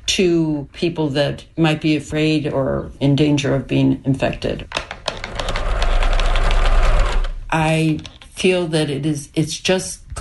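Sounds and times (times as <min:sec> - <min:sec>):
speech: 0:00.1 - 0:04.9, 0:07.5 - 0:10.1
old sewing machine from World War I running: 0:05.3 - 0:07.4.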